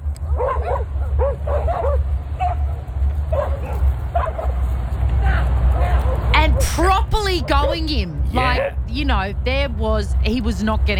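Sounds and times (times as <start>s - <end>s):
steady low outdoor rumble: 0.0s - 10.9s
several dogs barking, yipping and whining while chasing a man: 0.2s - 4.7s, 5.3s - 7.8s
speech: 6.8s - 10.9s.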